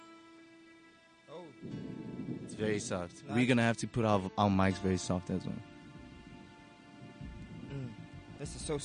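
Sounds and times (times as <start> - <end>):
soft steady rain hissing: 1.2 - 8.8
speech: 1.5 - 5.7, 8.7 - 8.8
low rolling rumble of thunder: 1.6 - 3.8, 5.4 - 8.8.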